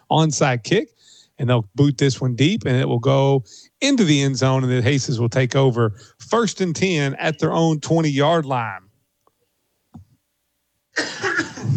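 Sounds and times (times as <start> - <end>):
speech: 0.1 - 8.9, 11.0 - 11.7
short loud breathy cough: 10.9 - 11.7.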